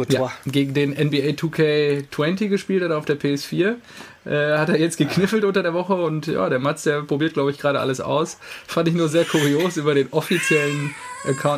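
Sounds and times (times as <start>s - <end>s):
speech: 0.0s - 11.5s
child crying: 9.2s - 9.7s, 10.3s - 11.5s.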